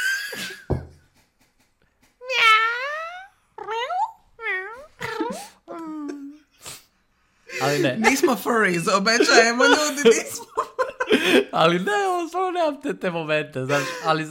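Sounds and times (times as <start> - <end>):
person imitating a cat meowing: 2.2 - 6.3
laughter: 7.5 - 12.0, 13.7 - 14.2
speech: 7.7 - 10.5, 11.2 - 14.2.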